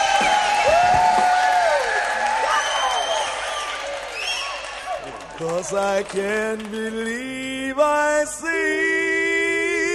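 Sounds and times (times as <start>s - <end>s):
bus passengers shouting and whooping: 0.0s - 5.0s
crowd of bus passengers cheering loudly: 0.0s - 6.3s
speech: 5.5s - 9.4s.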